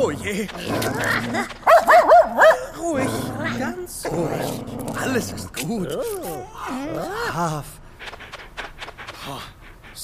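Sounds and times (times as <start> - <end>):
speech: 0.0 - 8.2, 9.2 - 10.0
dog low rumbling growl: 0.0 - 9.9
dog yelping barks: 1.6 - 2.7.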